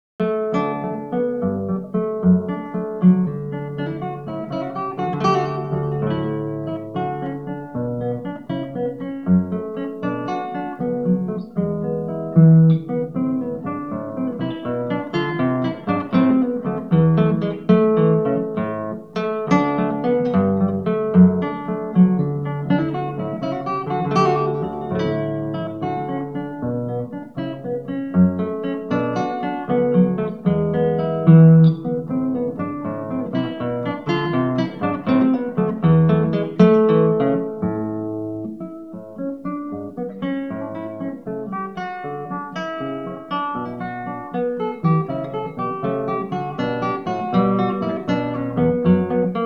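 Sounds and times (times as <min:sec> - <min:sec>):
gigue played on guitar: 0:00.2 - 0:49.4.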